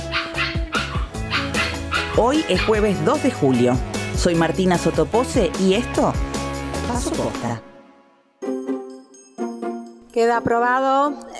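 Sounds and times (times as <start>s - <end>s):
dog barking: 0.0s - 3.8s
speech: 2.2s - 6.3s, 6.9s - 7.7s, 10.2s - 11.3s.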